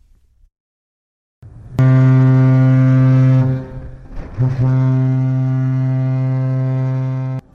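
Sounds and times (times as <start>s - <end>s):
ship's horn blast departing port: 1.5s - 7.5s.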